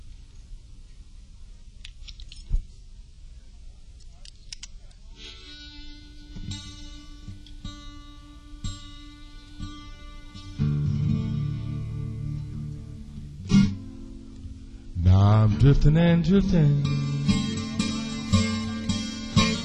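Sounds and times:
harmonica playing sustained reedy notes and chords: 5.2s - 14.0s, 16.6s - 19.6s
speech: 15.6s - 17.1s.

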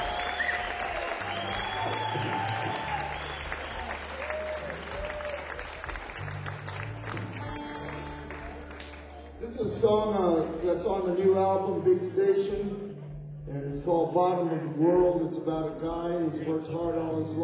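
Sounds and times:
audience applause for a band: 0.0s - 10.0s
crowd noise: 0.0s - 17.4s
speech: 9.8s - 12.9s, 13.8s - 17.4s.

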